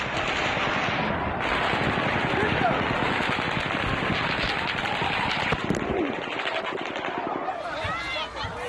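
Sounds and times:
rapid automatic gunfire: 0:00.0 - 0:07.8
frantic shouting and screaming voices: 0:02.3 - 0:03.0, 0:04.1 - 0:08.6.

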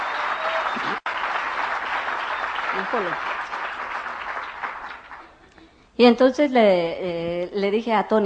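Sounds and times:
audience applause: 0:00.0 - 0:05.4
speech: 0:02.8 - 0:03.3, 0:06.0 - 0:08.2.

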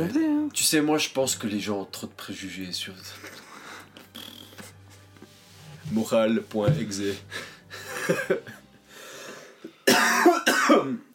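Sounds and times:
speech: 0:00.0 - 0:03.4, 0:05.9 - 0:07.5, 0:08.1 - 0:08.6, 0:10.7 - 0:11.1
person coughing harshly: 0:09.8 - 0:11.1.

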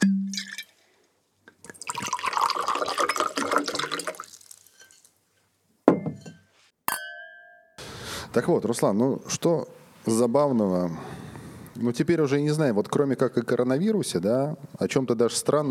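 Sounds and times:
sharp glass clinks with bright ringing tone: 0:00.0 - 0:00.7, 0:05.9 - 0:07.8
wine glugging and splashing into a glass: 0:01.6 - 0:05.1
speech: 0:08.4 - 0:11.2, 0:11.8 - 0:15.6.

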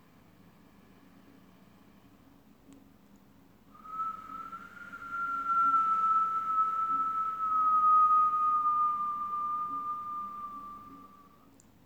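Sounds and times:
whistled exhale through pursed lips during a breathing exercise: 0:03.8 - 0:11.4.

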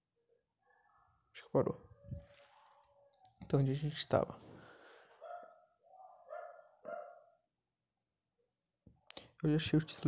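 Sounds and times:
speech: 0:01.5 - 0:01.9, 0:03.5 - 0:04.5, 0:09.4 - 0:10.0
dog barking: 0:05.2 - 0:07.4.

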